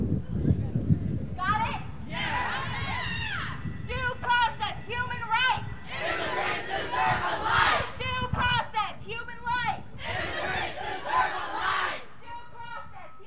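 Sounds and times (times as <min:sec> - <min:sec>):
constant rumble of crowd noise: 0:00.1 - 0:08.7, 0:09.8 - 0:12.6
high school students shouting and chanting while marching: 0:01.9 - 0:08.7, 0:09.8 - 0:13.2.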